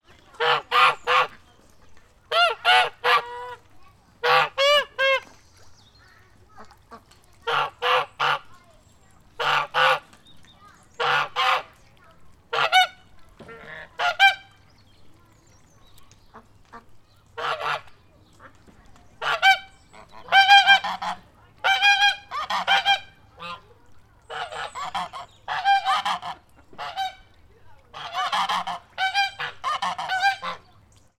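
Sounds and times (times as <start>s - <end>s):
birds on a public farm: 0.0s - 31.1s
people in background on a public farm: 0.0s - 31.1s
geese honking on a public farm: 0.3s - 1.5s, 2.3s - 3.6s, 4.2s - 5.3s, 6.6s - 8.5s, 9.4s - 10.0s, 11.0s - 11.7s, 12.5s - 14.5s, 16.7s - 17.9s, 19.2s - 27.3s, 27.9s - 30.6s.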